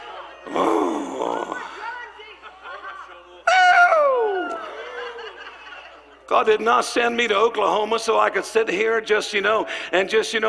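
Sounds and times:
laughter: 0:00.0 - 0:06.5
man growling: 0:00.5 - 0:01.7
speech: 0:06.3 - 0:10.4.

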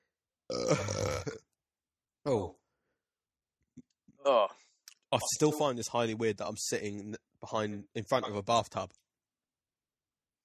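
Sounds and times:
person burping: 0:00.5 - 0:01.5, 0:04.2 - 0:04.6
speech: 0:00.7 - 0:01.4, 0:02.2 - 0:02.5, 0:05.1 - 0:09.0.

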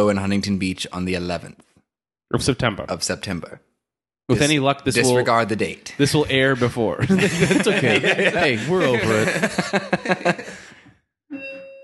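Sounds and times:
speech: 0:00.0 - 0:01.7, 0:02.3 - 0:03.7, 0:04.3 - 0:10.6
laughter: 0:07.0 - 0:10.9
home doorbell chime pulses: 0:11.3 - 0:11.8.

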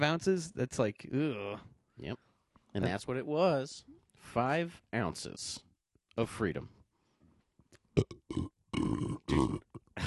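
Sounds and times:
speech: 0:00.0 - 0:06.8, 0:08.0 - 0:10.0
loud drawn-out belching: 0:08.0 - 0:10.0.

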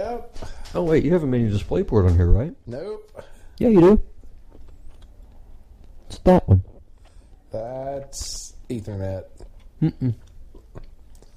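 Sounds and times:
speech: 0:00.2 - 0:04.1, 0:06.2 - 0:06.7, 0:07.5 - 0:10.2
chewing food with moist mouth clicks and smacks: 0:04.3 - 0:06.1, 0:09.3 - 0:11.3
short closed-mouth hums: 0:05.0 - 0:06.9, 0:09.4 - 0:11.3.

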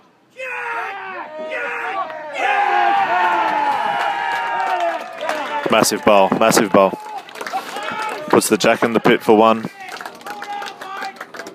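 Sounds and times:
crowd cheering and shouting at a lawn bowls match: 0:00.4 - 0:11.2
speech: 0:05.7 - 0:07.1, 0:08.4 - 0:09.8.

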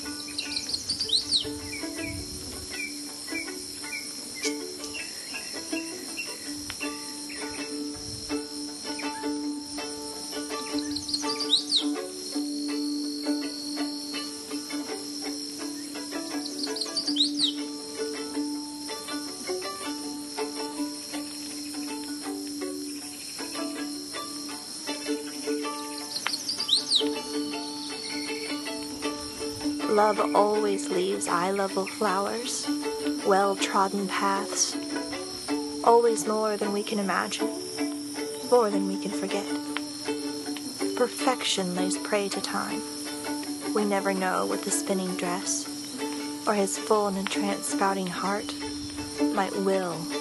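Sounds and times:
birds: 0:00.0 - 0:50.1
chestnut-sided warbler singing: 0:00.0 - 0:50.1
insects: 0:00.0 - 0:50.1
speech: 0:30.0 - 0:34.8, 0:35.9 - 0:37.6, 0:38.5 - 0:39.6, 0:41.0 - 0:43.0, 0:43.8 - 0:45.7, 0:46.5 - 0:48.6, 0:49.4 - 0:50.1.

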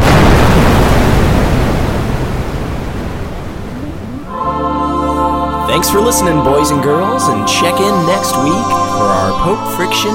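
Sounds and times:
bomb explosion: 0:00.0 - 0:04.3
brief rising tone: 0:03.6 - 0:05.5
speech: 0:05.8 - 0:10.1.

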